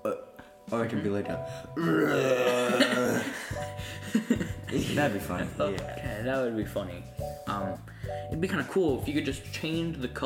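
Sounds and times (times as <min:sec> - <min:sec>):
person belching: 0:00.0 - 0:00.4, 0:01.8 - 0:03.6
speech: 0:00.7 - 0:10.2.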